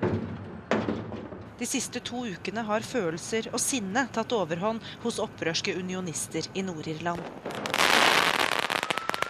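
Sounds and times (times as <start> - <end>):
speech: 1.6 - 7.7
fireworks exploding in a street: 7.2 - 9.2.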